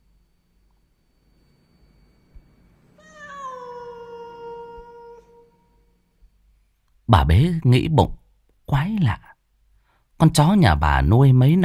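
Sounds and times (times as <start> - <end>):
cat meowing plaintively in a yard: 3.0 - 5.9
speech: 7.1 - 9.3, 10.2 - 11.6.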